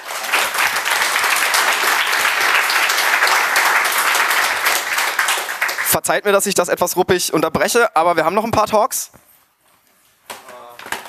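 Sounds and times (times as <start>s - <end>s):
audience applause: 0.0s - 6.0s
speech: 5.9s - 9.2s.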